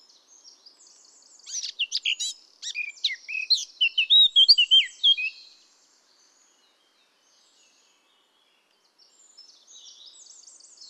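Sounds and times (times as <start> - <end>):
Eurasian blackcap Sylvia atricapilla singing scratchy notes and fluted whistles: 1.4 - 5.4.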